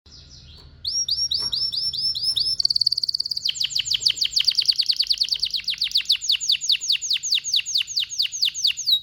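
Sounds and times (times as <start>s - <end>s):
canary song: 0.1s - 9.0s.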